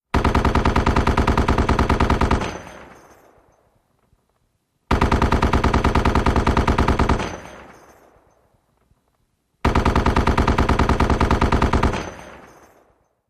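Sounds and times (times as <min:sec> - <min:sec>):
.50 caliber gun firing long fast bursts: 0:00.1 - 0:03.0, 0:04.9 - 0:07.9, 0:09.6 - 0:12.6
shell casings dropping: 0:02.3 - 0:04.1, 0:07.2 - 0:08.9, 0:11.9 - 0:13.2.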